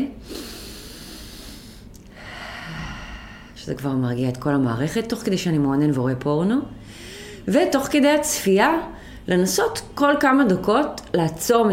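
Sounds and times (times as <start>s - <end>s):
deep breath in through nose: 0.2s - 3.6s
long airy exhale through the mouth: 0.2s - 3.6s
speech: 3.6s - 11.7s.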